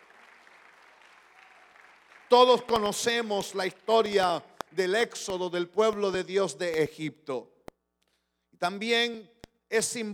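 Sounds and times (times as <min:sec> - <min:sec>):
church audience applauding: 0:00.0 - 0:03.6
speech: 0:02.3 - 0:07.5, 0:08.6 - 0:10.1.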